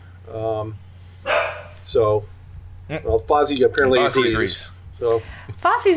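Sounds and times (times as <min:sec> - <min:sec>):
low steady hum: 0:00.0 - 0:05.9
speech: 0:00.3 - 0:00.8, 0:01.8 - 0:05.9
female dog barking: 0:01.2 - 0:01.8.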